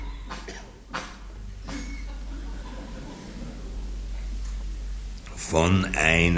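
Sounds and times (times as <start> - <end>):
sharp raspy coughs: 0.0 - 0.8, 1.6 - 2.2
steady low hum: 0.0 - 6.3
laughter: 1.7 - 4.5
speech: 5.5 - 6.3.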